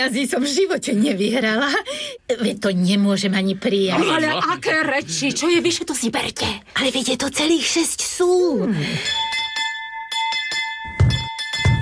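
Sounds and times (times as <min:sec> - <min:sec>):
speech: 0:00.0 - 0:09.4
door bell being rung violently: 0:09.0 - 0:11.8.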